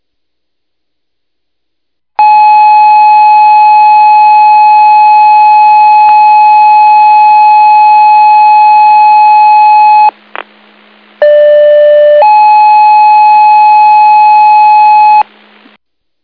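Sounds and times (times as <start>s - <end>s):
emergency dispatch electronic paging tones: 2.2s - 10.1s, 11.2s - 15.3s.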